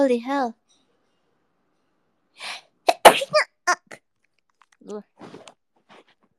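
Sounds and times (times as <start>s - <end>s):
speech: 0.0s - 0.6s, 4.8s - 5.4s
short sharp breath: 2.4s - 2.8s
person sneezing: 2.4s - 3.4s.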